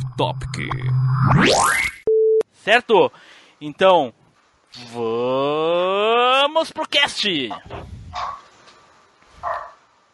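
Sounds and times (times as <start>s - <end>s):
speech: 0.2s - 1.9s, 2.6s - 8.4s
dog barking: 7.5s - 8.5s, 9.4s - 9.8s.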